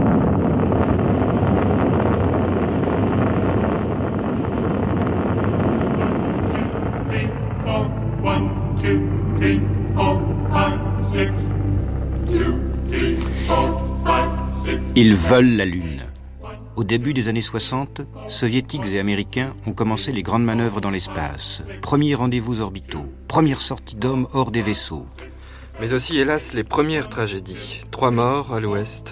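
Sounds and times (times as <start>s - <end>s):
rocket engines roaring at launch: 0.0s - 15.4s
speech: 15.0s - 16.0s, 16.8s - 29.0s.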